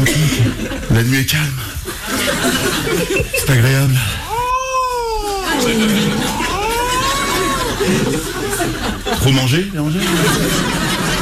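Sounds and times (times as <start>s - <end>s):
laughter: 0.0s - 11.2s
speech: 0.7s - 4.2s, 5.6s - 6.5s, 7.8s - 11.0s
voice imitating a wild cat's yowling caterwaul: 4.3s - 7.7s.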